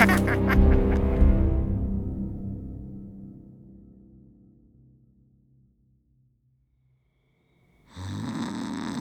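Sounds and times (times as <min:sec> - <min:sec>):
laughter: 0:00.0 - 0:01.3
person snoring loudly while asleep: 0:07.9 - 0:08.9.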